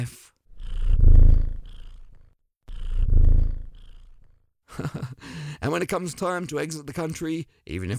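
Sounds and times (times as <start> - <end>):
cat purring in low rumbling bursts: 0.5 - 4.4
speech: 4.8 - 7.9.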